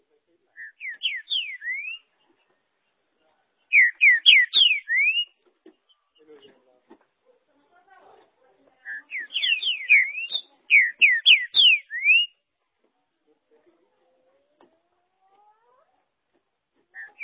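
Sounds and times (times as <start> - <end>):
Green-winged saltator singing loud phrases of slurred whistles: 0.6 - 2.1, 3.7 - 5.4, 8.9 - 12.4.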